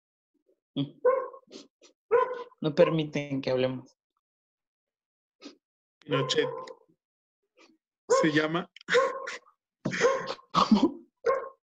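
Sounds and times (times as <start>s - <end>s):
speech: 0.8s - 1.7s, 2.6s - 4.0s, 5.4s - 6.8s, 8.2s - 10.0s
dogs barking across the way: 1.0s - 1.5s, 2.1s - 3.1s, 6.1s - 6.8s, 8.1s - 10.4s, 11.2s - 11.6s.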